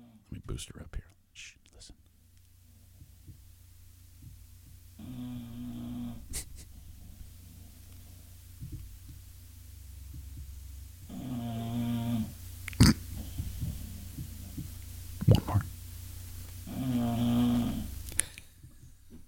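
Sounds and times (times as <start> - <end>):
speech: 0.3 - 2.0, 5.1 - 6.4
low hum: 2.0 - 19.2
pet dog snoring loudly: 5.0 - 6.5, 11.0 - 15.8, 16.6 - 18.4.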